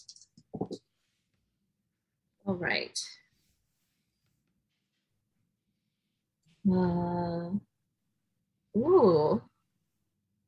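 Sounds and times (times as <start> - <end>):
plastic dice rattling and tumbling across a surface: 0.0 - 0.8
speech: 2.5 - 3.2, 6.7 - 7.7, 8.8 - 9.5.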